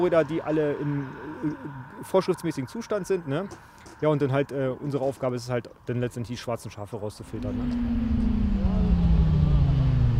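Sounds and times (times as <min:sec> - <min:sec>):
speech: 0:00.0 - 0:08.6
loud motorcycle engine running at a roadside traffic check: 0:07.2 - 0:10.1.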